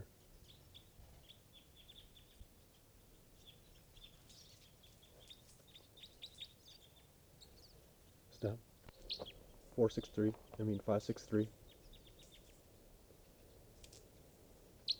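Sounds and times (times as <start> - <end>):
steady background hiss: 0.0 - 14.9
flock of Type 2 Red Crossbills giving flight calls: 5.2 - 14.9
speech: 8.4 - 11.6.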